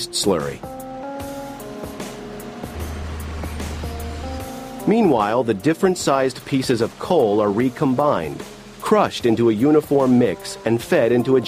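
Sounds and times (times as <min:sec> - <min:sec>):
speech: 0:00.0 - 0:00.7, 0:04.9 - 0:11.4
industrial dryer in a plant spinning coal at high speed: 0:01.2 - 0:05.4
deep low drone: 0:01.2 - 0:05.5
rattling knocks of industrial dryer: 0:01.4 - 0:05.1.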